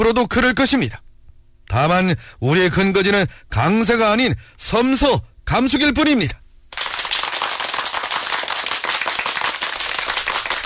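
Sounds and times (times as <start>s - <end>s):
speech: 0.0s - 1.1s, 1.7s - 6.9s
crowd applauding enthusiastically: 6.7s - 10.6s.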